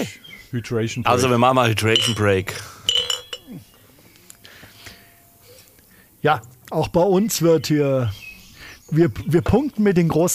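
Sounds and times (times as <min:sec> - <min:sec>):
speech: 0:00.0 - 0:02.8, 0:06.2 - 0:08.2, 0:08.9 - 0:10.3
glasses clinking together in a toast: 0:01.1 - 0:03.8.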